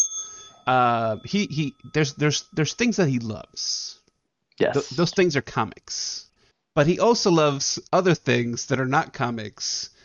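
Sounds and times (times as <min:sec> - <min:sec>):
hand bell ringing: 0:00.0 - 0:02.0
speech: 0:00.7 - 0:04.0, 0:04.6 - 0:10.0.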